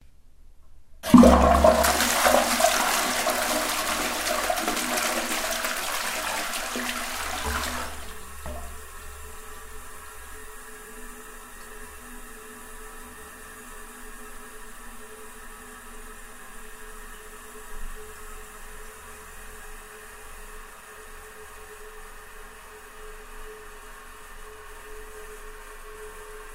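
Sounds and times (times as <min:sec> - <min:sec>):
long toilet flush: 0:01.0 - 0:20.6.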